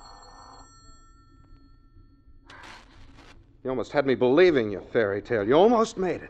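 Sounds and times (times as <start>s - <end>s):
telephone bell ringing: 0.0s - 2.7s
low hum: 0.0s - 6.2s
speech: 3.6s - 6.2s.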